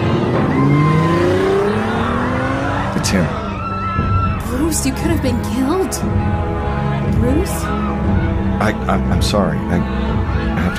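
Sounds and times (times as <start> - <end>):
car engine revving as the car pulls away: 0.0 - 6.4
speech: 3.1 - 3.4, 4.7 - 10.0.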